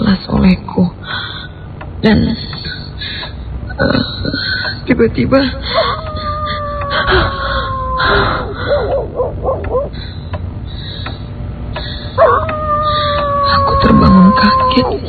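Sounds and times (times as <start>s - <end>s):
speech: 0.4s - 0.9s, 2.0s - 2.5s, 3.8s - 4.1s, 4.9s - 5.9s
dog howling: 5.6s - 10.0s, 12.2s - 15.0s.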